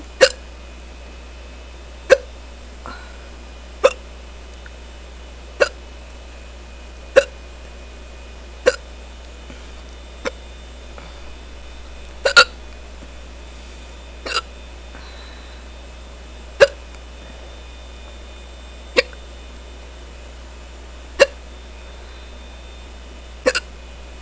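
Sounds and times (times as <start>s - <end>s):
faint low hum: 0.0s - 24.2s
person hiccuping after drinking beer: 0.2s - 0.5s, 2.1s - 2.3s, 3.8s - 4.0s, 5.6s - 5.8s, 7.1s - 7.4s, 8.6s - 8.9s, 12.2s - 12.6s, 14.2s - 14.5s, 16.6s - 16.8s, 19.0s - 19.2s, 21.2s - 21.4s, 23.4s - 23.7s.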